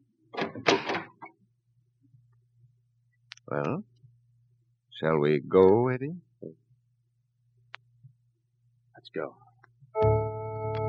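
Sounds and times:
door being opened with creak and rattle: 0.3 - 1.3
speech: 3.5 - 3.9, 5.0 - 6.6, 9.2 - 9.4.

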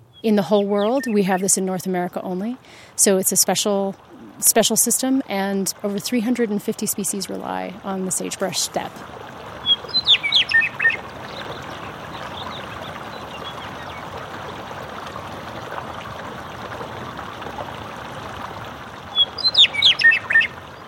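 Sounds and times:
meadowlark singing: 0.0 - 2.5, 9.6 - 14.0, 19.1 - 20.8
speech: 0.2 - 9.4
water rushing in a thermal hot springs runoff channel: 2.2 - 20.8.

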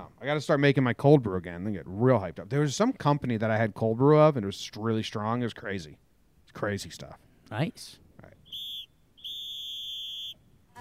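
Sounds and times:
speech: 0.2 - 8.3
sustained high-pitched whistle tone: 8.4 - 10.5.

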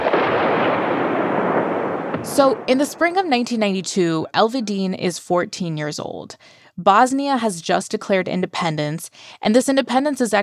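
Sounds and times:
bombs, rockets and cannon fire explosions in aerial bombardment: 0.0 - 3.9
speech: 2.2 - 10.4.

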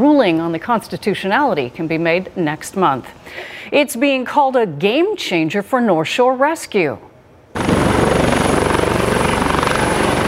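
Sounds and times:
speech: 0.0 - 7.1
helicopter rotor blades thumping: 7.6 - 10.2.

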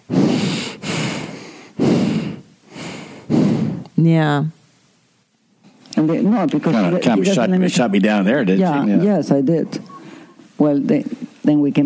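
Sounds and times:
man breathing heavily with rasping breaths on a phone call: 0.0 - 3.9
speech: 4.0 - 4.6, 6.0 - 9.9, 10.6 - 11.8.

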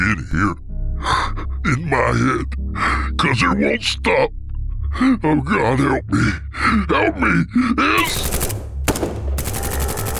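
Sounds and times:
speech: 0.2 - 0.6, 1.6 - 8.4
automatic gunfire: 8.0 - 10.1.

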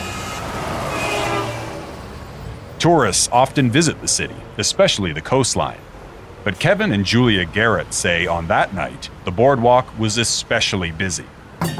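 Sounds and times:
heavy transport truck traffic crossing the Sino-Korean Friendship Bridge over the Yalu River: 0.0 - 11.7
speech: 2.8 - 11.7.

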